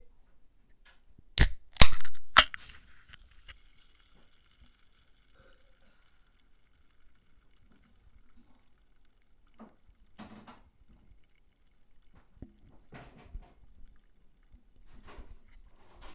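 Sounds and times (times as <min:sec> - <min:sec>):
satisfying crack of opening seltzer: 0:01.4 - 0:03.6
seltzer bubbles fizzing: 0:02.3 - 0:16.1.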